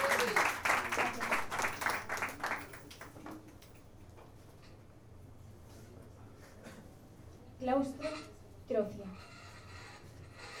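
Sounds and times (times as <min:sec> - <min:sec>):
audience applause at a poetry reading: 0:00.0 - 0:03.2
speech: 0:07.7 - 0:09.3.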